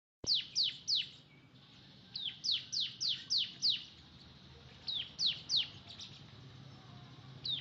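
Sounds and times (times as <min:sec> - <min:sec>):
Oriental magpie-robin song of sharp high downslurred whistled notes: 0:00.2 - 0:04.0, 0:04.9 - 0:06.2
faint low hum: 0:00.3 - 0:07.6.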